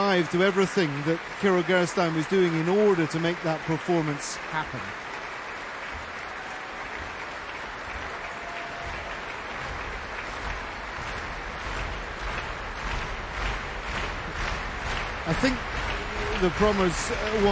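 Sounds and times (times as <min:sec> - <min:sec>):
large concert audience applauding in a concert hall: 0:00.0 - 0:17.4
speech: 0:00.1 - 0:05.0, 0:15.3 - 0:15.7, 0:16.4 - 0:17.4.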